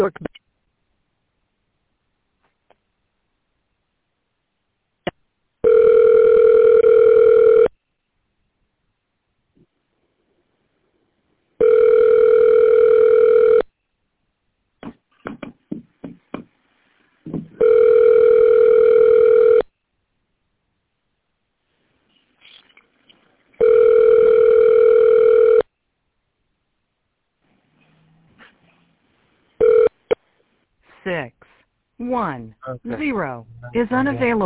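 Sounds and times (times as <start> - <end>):
speech: 0.0 - 0.4, 33.0 - 34.4
telephone line ringing while a call goes through to another extension: 5.6 - 7.7, 11.6 - 13.7, 17.6 - 19.6, 23.6 - 25.6, 29.6 - 30.0.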